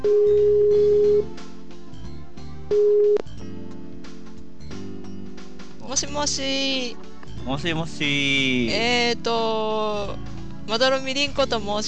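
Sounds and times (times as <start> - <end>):
speech: 0.0 - 0.3, 6.2 - 11.8
phone ringback tone while placing a phone call: 0.0 - 1.3, 2.7 - 3.2.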